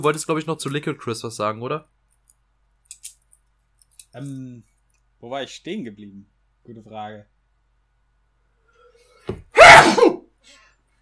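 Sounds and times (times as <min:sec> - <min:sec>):
speech: 0:00.0 - 0:02.0, 0:04.2 - 0:07.3
single loud sneeze: 0:09.6 - 0:10.3.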